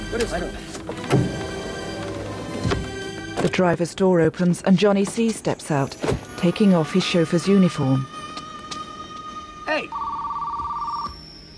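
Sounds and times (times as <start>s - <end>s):
speech: 0.1s - 1.2s, 3.4s - 8.1s
telephone ringing with a clear tone: 5.7s - 11.5s.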